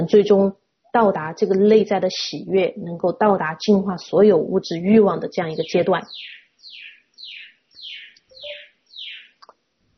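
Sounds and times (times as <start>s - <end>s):
speech: 0.1s - 6.4s
bird chirping: 5.3s - 9.5s.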